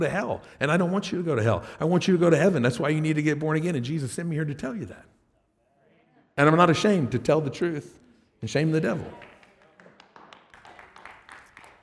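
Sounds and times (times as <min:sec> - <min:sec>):
speech: 0:00.0 - 0:05.2, 0:06.4 - 0:09.3
sparse clapping from a few people: 0:09.0 - 0:11.8.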